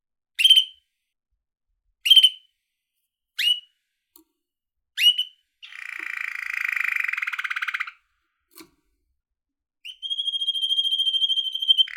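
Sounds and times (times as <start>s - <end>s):
male little yellow canary chirping and trilling in a bird cage: 3.4s - 3.7s, 5.0s - 8.1s, 9.9s - 11.9s.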